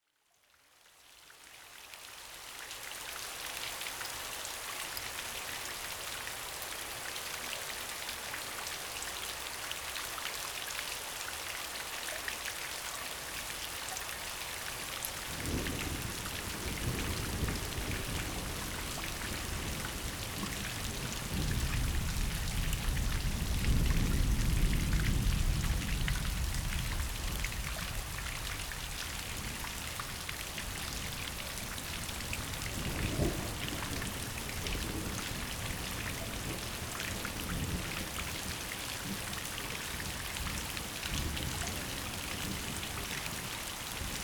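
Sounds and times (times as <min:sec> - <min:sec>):
rain at night: 0:00.0 - 0:44.2.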